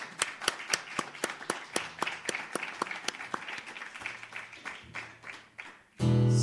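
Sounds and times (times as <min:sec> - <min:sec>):
audience applauding a performer on a stage: 0:00.0 - 0:06.3.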